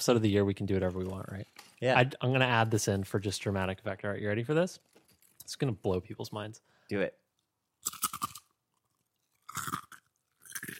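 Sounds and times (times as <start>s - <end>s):
speech: 0.0s - 7.2s
crisp food being bitten and chewed: 7.8s - 10.7s.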